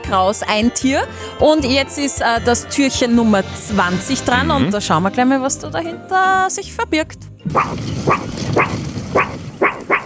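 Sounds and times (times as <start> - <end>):
speech: 0.1 - 9.4
dog barking: 7.5 - 10.0.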